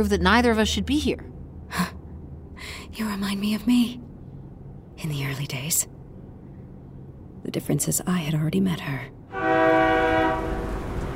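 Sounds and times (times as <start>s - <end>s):
speech: 0.0s - 2.0s, 3.0s - 4.1s, 5.0s - 6.0s, 7.4s - 9.8s
passing train rumbling on rails in cold rainy weather: 0.0s - 11.1s
loud train horn blaring in cold rainy weather: 9.3s - 10.9s.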